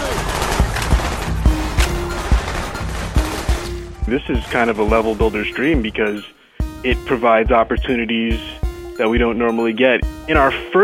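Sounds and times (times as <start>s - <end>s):
video game gunfire: 0.0s - 3.9s
rumbling video game effects: 0.0s - 7.1s
speech: 4.1s - 10.8s.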